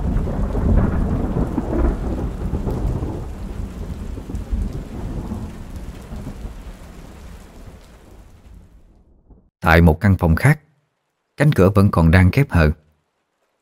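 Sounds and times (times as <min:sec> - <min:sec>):
light rain pattering on a window: 0:00.0 - 0:09.0, 0:10.8 - 0:11.4, 0:12.8 - 0:13.5
speech: 0:09.7 - 0:10.6, 0:11.4 - 0:12.8.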